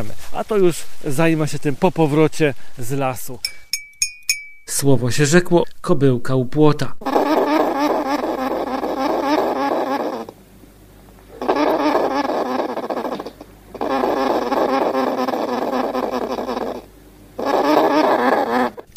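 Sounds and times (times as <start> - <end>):
speech: 0.0 - 3.6, 4.7 - 7.3
edible dormouse chattering squeaks: 7.0 - 10.4, 11.3 - 18.9.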